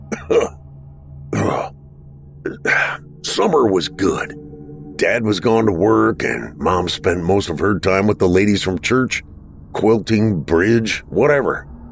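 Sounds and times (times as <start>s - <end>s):
man coughing: 0.0s - 0.6s, 1.4s - 1.7s, 2.5s - 3.0s
speech: 2.5s - 4.4s, 5.0s - 11.7s.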